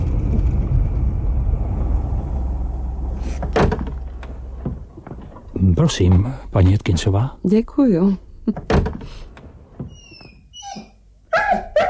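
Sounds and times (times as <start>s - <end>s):
heavy thump: 0.0s - 5.5s
speech: 5.8s - 9.3s
dog in a car whimpering, squeaking and yelping: 9.9s - 11.8s.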